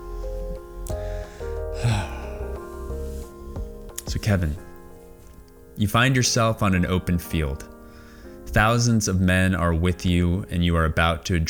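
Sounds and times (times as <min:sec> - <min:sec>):
person taking a deep breath during a guided reflective exercise: 0:00.0 - 0:05.3, 0:07.8 - 0:08.4
gentle music: 0:00.0 - 0:11.4
speech: 0:04.1 - 0:04.7, 0:05.8 - 0:07.7, 0:08.5 - 0:11.4.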